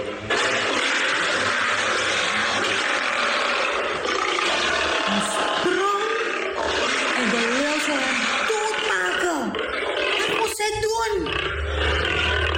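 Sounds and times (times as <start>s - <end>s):
lion roaring: 0.0s - 12.5s.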